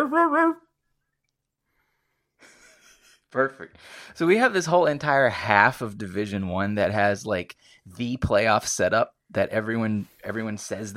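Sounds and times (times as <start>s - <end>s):
speech: 0.0s - 0.6s, 3.3s - 10.9s
person imitating a dog bark in a two-part tonal yelp: 0.0s - 0.7s.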